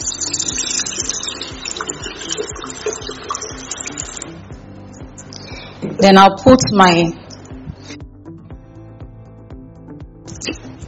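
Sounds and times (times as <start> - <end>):
faint hollow gurgle of isopropyl alcohol: 0.0 - 4.3
isopropyl alcohol pouring into a bucket: 0.0 - 4.3
speech: 6.0 - 7.2.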